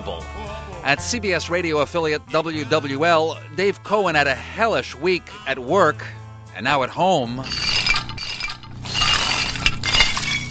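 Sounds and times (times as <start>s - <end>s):
speech: 0.8s - 7.8s
smashed ceramic roofing tiles shattering in a street after Hurricane Katrina in New Orleans: 7.4s - 10.4s.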